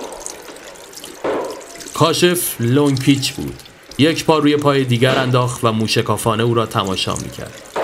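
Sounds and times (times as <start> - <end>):
water poured from a bowl: 0.0 - 7.8
speech: 2.0 - 7.7.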